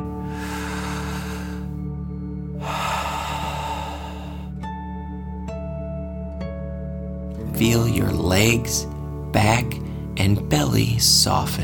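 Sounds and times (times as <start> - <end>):
deep breathing in and out in a guided dragon-breath exercise: 0.1 - 4.7
speech: 7.6 - 11.6.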